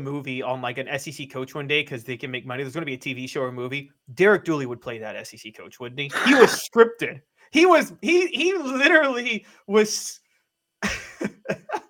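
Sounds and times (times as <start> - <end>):
speech: 0.0 - 10.2, 10.8 - 11.7
laughter: 6.1 - 6.6, 10.8 - 11.8
stifled coughs from a person with COVID: 6.1 - 6.7.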